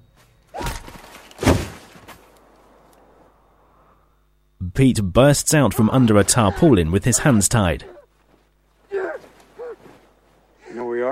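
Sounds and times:
low hiss: 0.0 - 11.0
rifle butt striking a man with dull heavy thuds: 0.8 - 2.3
speech: 4.8 - 8.0.

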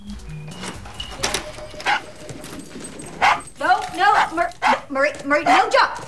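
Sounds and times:
small brown dog yapping with high-pitched barks: 1.8 - 2.1, 3.1 - 6.0
speech: 5.0 - 6.0.

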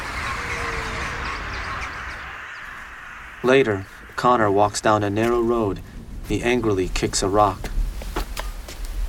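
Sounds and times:
several birds chirping and calling: 0.0 - 5.6
steady outdoor hiss: 0.0 - 9.0
speech: 3.4 - 7.7.

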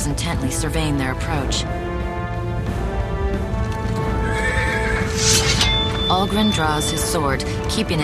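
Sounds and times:
speech: 0.0 - 2.2, 6.1 - 8.0
continuous tonal background: 0.0 - 8.0
horse whinny: 4.0 - 6.0.

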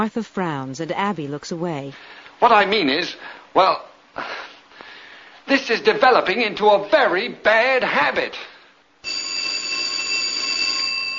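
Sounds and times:
speech: 0.0 - 4.5, 5.5 - 8.5
telephone ringing with bright metallic bell: 9.0 - 11.1.

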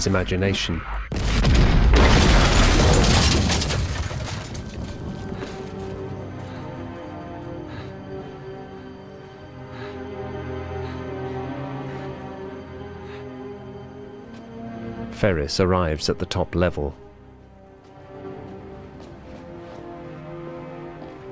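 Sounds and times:
speech: 0.0 - 1.7, 15.2 - 17.1
loud explosion with lingering low rumble: 1.0 - 5.4
scattered debris-like crackles: 1.1 - 6.7
faint tonal drones: 5.0 - 21.3.

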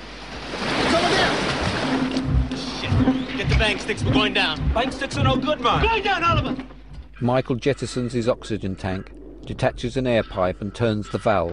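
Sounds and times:
rushing churning water as a small submarine surfaces from an undersea wreck: 0.0 - 9.9
low rumble: 1.2 - 11.5
speech: 3.6 - 6.6, 7.2 - 11.5.

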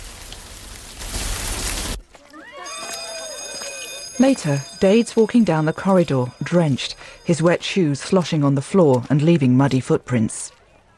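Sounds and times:
rain falling: 0.0 - 2.1
speech: 4.2 - 10.6.

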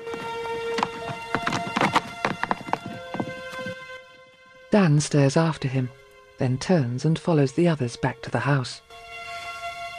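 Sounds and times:
horse galloping, hooves clattering: 0.0 - 4.0
speech: 4.7 - 9.0.

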